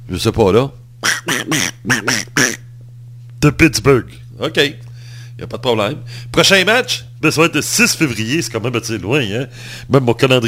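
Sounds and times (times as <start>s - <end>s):
steady low hum: 0.0s - 10.4s
speech: 0.1s - 2.6s, 3.4s - 4.8s, 5.4s - 10.4s
voice imitating raspy duck quacks: 1.0s - 2.7s.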